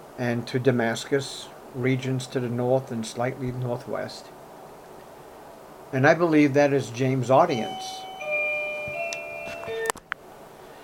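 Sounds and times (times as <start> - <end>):
speech: 0.2 - 4.4, 5.9 - 8.1
front doorbell chiming with sustained electronic tones: 7.5 - 9.9.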